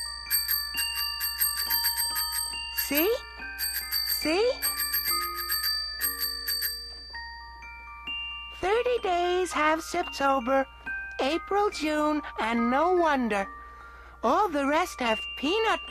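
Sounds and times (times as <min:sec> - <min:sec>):
small tricycle bell ringing: 0:00.0 - 0:12.6
speech: 0:02.9 - 0:03.3, 0:04.2 - 0:04.7, 0:09.0 - 0:13.6, 0:14.2 - 0:15.8.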